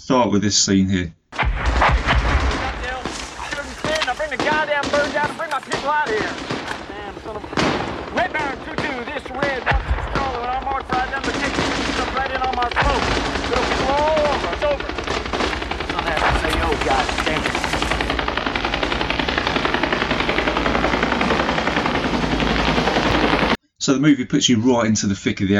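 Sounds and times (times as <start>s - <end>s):
speech: 0.0s - 1.2s, 4.3s - 6.5s, 23.9s - 25.5s
constant roar of a rescue helicopter: 1.6s - 23.6s
soldiers from the 101st Airborne Division shouting: 2.5s - 18.1s.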